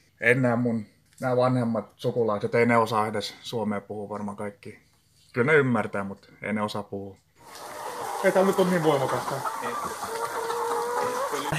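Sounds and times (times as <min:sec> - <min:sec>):
speech: 0:00.2 - 0:10.1
chickens clucking: 0:07.4 - 0:11.5.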